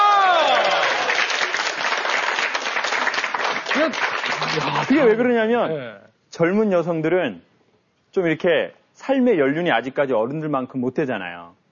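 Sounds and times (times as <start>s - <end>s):
large audience applause: 0.0s - 5.1s
speech: 3.8s - 7.5s, 8.2s - 11.6s.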